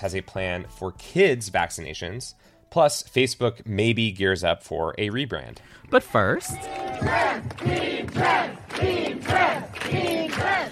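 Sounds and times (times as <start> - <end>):
speech: 0.0 - 10.6
protesters chanting in unison at demonstration outside Netflix in Los Angeles: 6.4 - 10.6.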